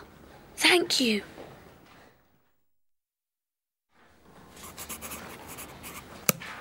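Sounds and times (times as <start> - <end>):
speech: 0.6 - 1.3
pencil scratching on paper: 4.4 - 6.5.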